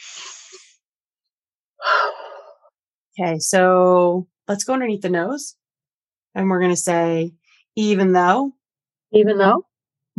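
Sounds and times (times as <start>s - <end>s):
person taking a deep breath in and out: 0.0s - 0.7s, 1.8s - 2.7s
speech: 0.2s - 0.8s, 3.2s - 5.6s, 6.4s - 10.1s.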